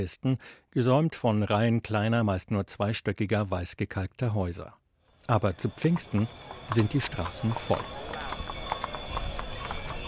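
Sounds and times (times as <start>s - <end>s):
speech: 0.0s - 8.2s
horse hooves trotting on unpaved sand streets: 5.2s - 10.0s
busy crowd murmur during the Pentecost pilgrimage in El Rocío: 5.4s - 10.0s
horse-drawn carriage rumble on sand streets: 5.6s - 10.0s.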